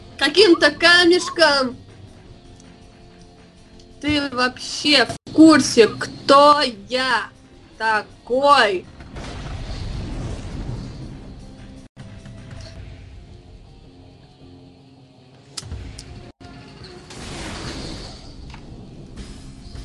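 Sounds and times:
speech: 0.2 - 1.8, 4.0 - 8.9
ship exploding: 9.0 - 11.6, 17.1 - 19.7.

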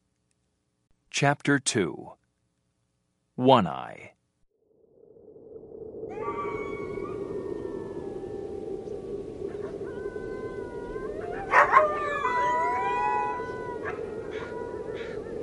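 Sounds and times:
speech: 1.2 - 2.2, 3.4 - 4.2
wolves howling in chorus: 6.1 - 15.4
wolf yips: 11.2 - 15.2.

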